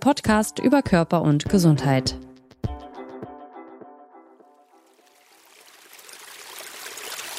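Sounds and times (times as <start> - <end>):
speech: 0.0 - 2.2
water dripping from pipes: 4.8 - 7.3
rushing brook: 5.1 - 7.3.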